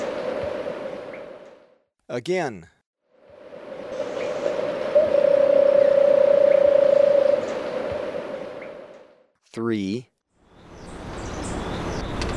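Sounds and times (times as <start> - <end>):
background hiss: 0.0 - 1.7, 3.2 - 9.2
speech: 2.1 - 2.8, 9.6 - 10.1
Red-headed barbet purring trill in Ecuador: 3.8 - 8.9.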